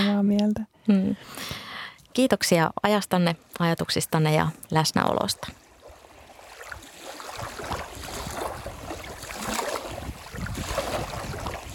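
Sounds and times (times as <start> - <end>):
speech: 0.0 - 1.6, 2.2 - 5.6
faint boat sounds: 3.2 - 11.7
water sloshing at sea: 5.0 - 11.7
gusting wind at sea: 5.3 - 11.7.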